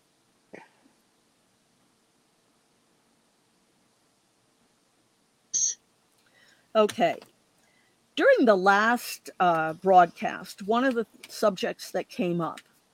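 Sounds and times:
throat clearing: 0.5s - 0.9s
speech: 6.8s - 7.3s, 8.2s - 12.7s.

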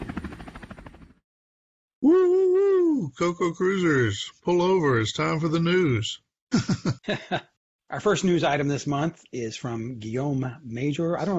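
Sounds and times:
helicopter rotor chopping: 0.0s - 1.2s
speech: 2.0s - 11.3s
laughter: 6.5s - 7.6s.

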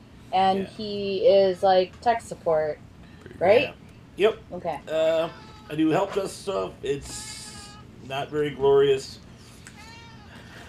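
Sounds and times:
steady low hum: 0.0s - 10.6s
speech: 0.3s - 7.4s, 8.1s - 9.2s
cat drawn-out meow: 4.9s - 6.0s, 7.1s - 8.5s, 9.7s - 10.6s.

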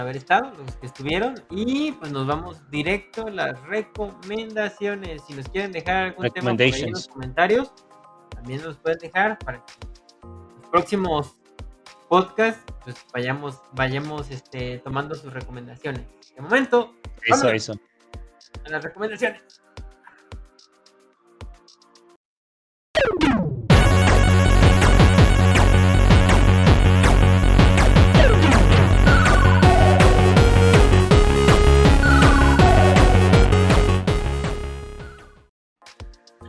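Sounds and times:
speech: 0.0s - 10.0s, 10.7s - 11.4s, 12.1s - 19.7s
strange clashing transition song with pulsing beats and sliding tones: 23.0s - 36.4s.

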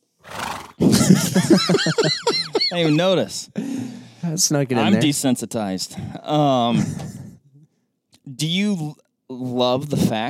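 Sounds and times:
horse neighing: 0.2s - 0.9s
horse snorting: 0.2s - 1.0s
laughter: 0.8s - 3.9s, 6.5s - 7.4s
speech: 0.8s - 7.2s, 8.3s - 10.2s.

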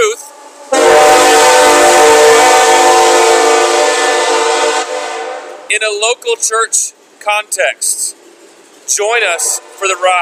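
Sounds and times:
train horn blaring as a train arrives: 0.3s - 5.7s, 9.3s - 10.2s
speech: 5.8s - 8.2s, 8.9s - 10.2s.

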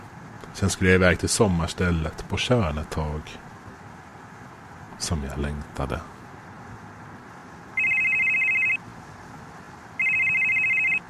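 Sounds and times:
soft hiss: 0.0s - 11.0s
speech: 0.6s - 3.5s, 5.0s - 6.2s
telephone ringing with a rapid electronic trill: 7.8s - 8.8s, 10.0s - 11.0s.

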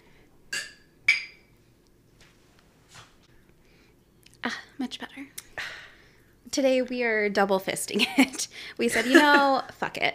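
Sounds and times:
glasses clinking: 0.5s - 1.5s
speech: 4.5s - 5.5s, 6.5s - 10.1s.

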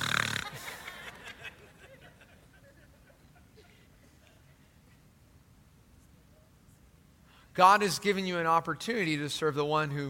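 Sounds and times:
voice imitating a loud rattling snore: 0.0s - 0.7s
laughter: 0.0s - 4.8s
speech: 7.6s - 10.0s.

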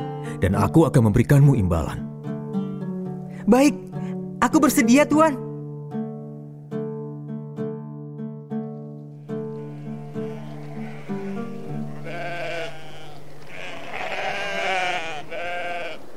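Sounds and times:
steady evenly spaced musical notes: 0.0s - 13.5s
speech: 0.4s - 2.1s, 3.4s - 5.4s
flock of sheep bleating while herded to pasture near Mecca: 9.2s - 16.1s.

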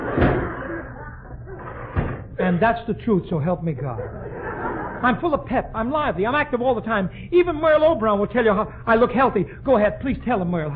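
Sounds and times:
door slamming shut: 0.0s - 0.6s, 1.9s - 2.3s
speech: 2.5s - 4.2s, 5.0s - 10.7s
laughter: 3.8s - 5.2s.

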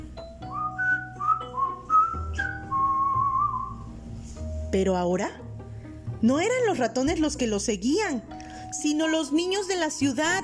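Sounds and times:
soft steady low accompaniment: 0.0s - 10.4s
light flute melody: 0.4s - 4.0s
speech: 4.7s - 5.4s, 6.2s - 10.4s.

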